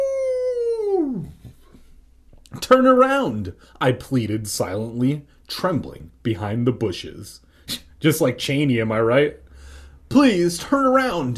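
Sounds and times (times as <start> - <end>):
animal howling at the moon: 0.0 - 1.5
speech: 2.7 - 9.4, 10.1 - 11.3.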